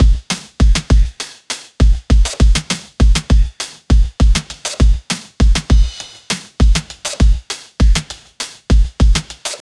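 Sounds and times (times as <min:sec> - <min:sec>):
drum kit hi-hat: 0:00.0 - 0:09.6.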